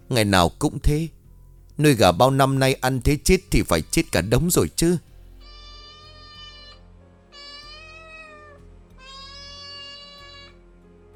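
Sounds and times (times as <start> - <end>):
speech: 0.1 - 1.2, 1.8 - 5.1
cat meowing: 5.4 - 10.6.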